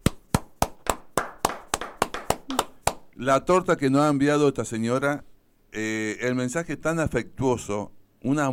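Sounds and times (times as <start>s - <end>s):
sharp hand claps: 0.0s - 3.2s
speech: 3.2s - 8.5s.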